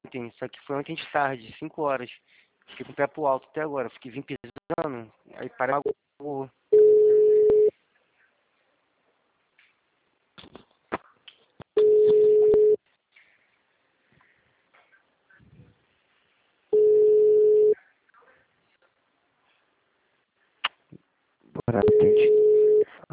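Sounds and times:
speech: 0.1s - 6.6s, 21.7s - 23.1s
telephone ringing back on the line: 6.8s - 7.7s, 11.8s - 12.8s, 16.8s - 17.8s, 21.9s - 22.8s.

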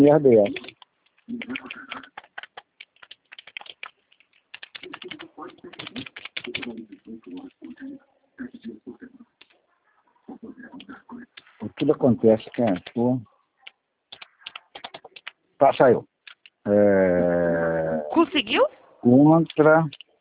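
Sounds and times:
speech: 0.0s - 0.6s, 1.3s - 1.8s, 11.8s - 13.3s, 15.6s - 16.1s, 16.7s - 20.0s
typing on a computer keyboard: 0.4s - 7.7s, 12.4s - 13.0s, 13.6s - 15.4s.

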